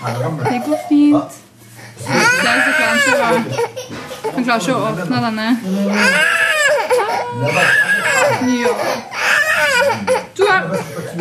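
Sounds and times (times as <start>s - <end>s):
speech: 0.0s - 6.4s, 7.3s - 10.1s
three-year-old child crying in wailing sobs: 2.1s - 3.9s, 5.9s - 11.2s.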